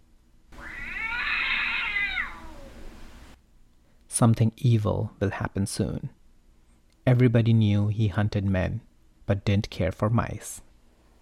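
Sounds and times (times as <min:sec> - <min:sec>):
long plaintive cat meow: 0:00.6 - 0:02.9
speech: 0:04.2 - 0:06.2, 0:07.1 - 0:10.7.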